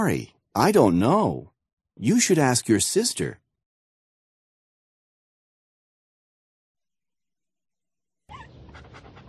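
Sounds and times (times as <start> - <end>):
speech: 0.0 - 3.4
dog panting: 8.3 - 9.2.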